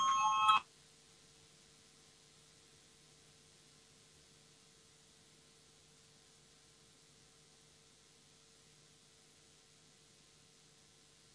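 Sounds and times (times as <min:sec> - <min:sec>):
electric voting bell ringing in a parliament chamber to call a vote: 0:00.0 - 0:00.6
faint hum: 0:00.0 - 0:11.3.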